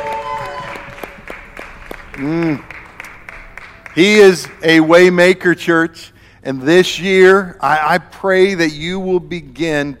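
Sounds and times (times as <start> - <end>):
audience applauding: 0.0 - 4.9
room hum: 0.0 - 9.9
speech: 2.2 - 2.7, 4.0 - 9.9.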